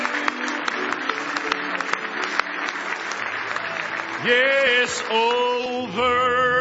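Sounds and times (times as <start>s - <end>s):
crowd of people applauding: 0.0s - 5.7s
speech: 4.2s - 6.5s.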